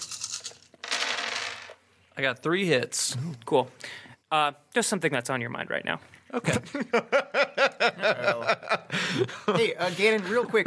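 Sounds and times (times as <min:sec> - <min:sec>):
ten dice rattling and clattering: 0:00.0 - 0:01.8
speech: 0:02.2 - 0:10.6
laughter: 0:06.4 - 0:10.6.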